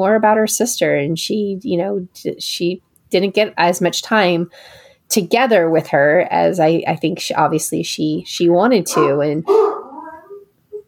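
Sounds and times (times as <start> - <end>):
speech: 0.0 - 9.8
dog barking and whimpering: 8.9 - 10.8.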